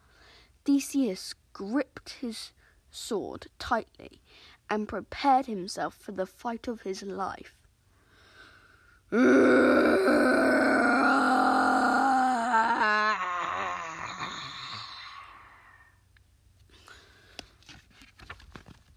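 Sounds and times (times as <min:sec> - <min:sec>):
speech: 0:00.7 - 0:07.6, 0:09.1 - 0:10.8
monstrous Minotaur snorting grunt and rough voiced bellow: 0:09.2 - 0:15.3.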